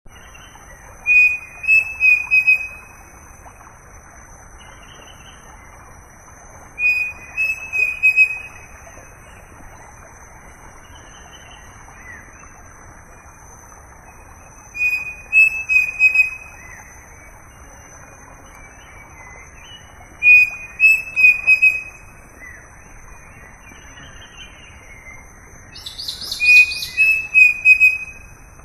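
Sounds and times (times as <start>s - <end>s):
Dromococcyx pavoninus calling: 1.1s - 2.8s, 6.8s - 8.7s, 14.8s - 16.8s, 20.2s - 22.0s, 25.7s - 28.3s.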